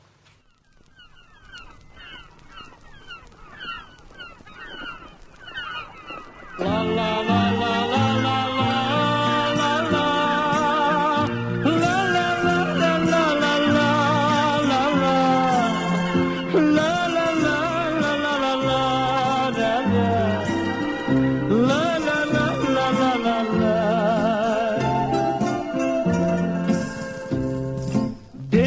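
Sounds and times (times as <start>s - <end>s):
recorded song with full band instrumentation: 6.5s - 28.6s.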